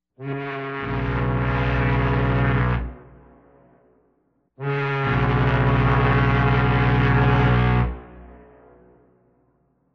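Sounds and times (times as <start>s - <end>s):
liner ship horn: 0.2s - 3.3s, 4.6s - 8.4s.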